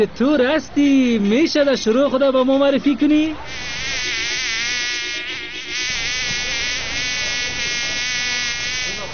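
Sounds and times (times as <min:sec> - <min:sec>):
speech: 0:00.0 - 0:04.0
fly buzzing at a garbage bin: 0:03.4 - 0:09.1.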